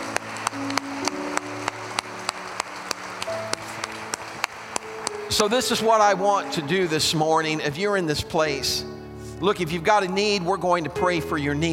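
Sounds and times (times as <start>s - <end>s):
crowd clapping a hand clap of praise to God: 0.0s - 6.7s
speech: 5.3s - 11.7s.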